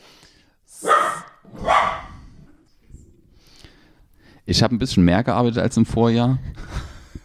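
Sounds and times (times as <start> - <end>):
small dog barking at a tangle of cables: 0.8 - 2.2
speech: 4.5 - 6.6.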